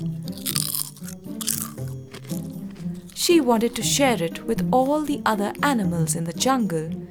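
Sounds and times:
crunching of chips: 0.0 - 4.0
steady low musical hum: 0.0 - 7.0
speech: 3.2 - 7.0.

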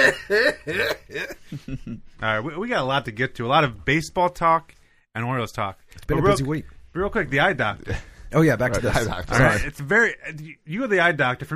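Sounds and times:
cough disguised as laughter: 0.0 - 2.0
speech: 0.0 - 11.5.

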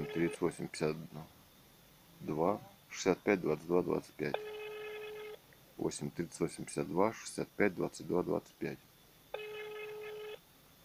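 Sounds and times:
electronic telephone tone while a call is dialed: 0.0 - 0.4, 4.3 - 5.4, 9.3 - 10.4
speech: 0.2 - 1.4, 2.2 - 4.6, 5.8 - 8.9.

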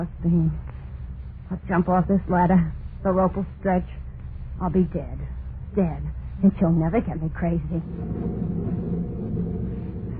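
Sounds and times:
speech: 0.0 - 0.7, 1.5 - 4.0, 4.6 - 8.8
rolling thunder: 7.8 - 10.1.

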